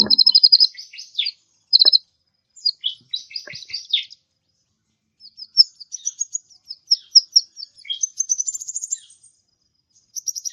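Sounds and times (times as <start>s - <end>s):
mixed birds twittering and chirping: 0.0s - 2.0s, 2.6s - 4.3s, 5.2s - 9.4s, 10.0s - 10.5s.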